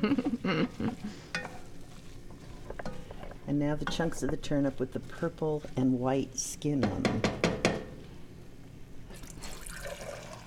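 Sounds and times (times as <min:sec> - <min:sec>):
speech: 0:00.0 - 0:01.2, 0:03.5 - 0:07.4
water poured into a cooking pot: 0:09.1 - 0:10.4.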